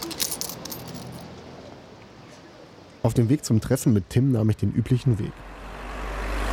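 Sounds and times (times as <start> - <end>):
coins clinking as payment and change are handed over at a counter: 0.0 - 1.3
speech: 3.0 - 5.5.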